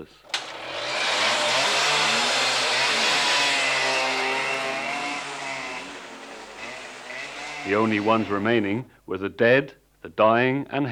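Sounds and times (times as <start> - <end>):
speech: 0.0 - 0.3, 7.6 - 10.9
loud motorcycle engines roaring and revving: 0.3 - 8.8.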